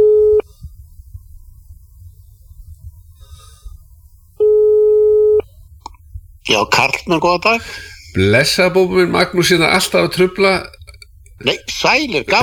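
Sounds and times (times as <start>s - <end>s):
telephone ringing tone on a radio call-in line: 0.0s - 0.4s, 4.4s - 5.4s
quiet low hum: 0.0s - 11.4s
speech: 6.5s - 10.8s, 11.4s - 12.4s.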